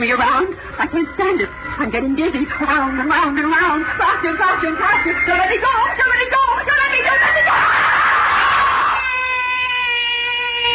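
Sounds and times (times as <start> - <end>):
speech: 0.0 - 7.7
person screaming in fright: 7.5 - 10.7.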